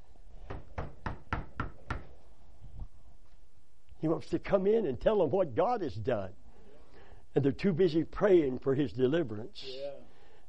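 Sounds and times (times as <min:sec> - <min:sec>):
knocking on a door: 0:00.5 - 0:02.1
speech: 0:04.0 - 0:06.4, 0:07.4 - 0:09.8.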